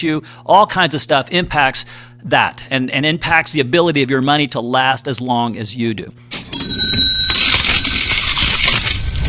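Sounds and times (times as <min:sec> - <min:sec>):
speech: 0:00.0 - 0:06.4
cash register bell ding: 0:06.4 - 0:08.1
cash register drawer and works clattering: 0:06.4 - 0:09.2.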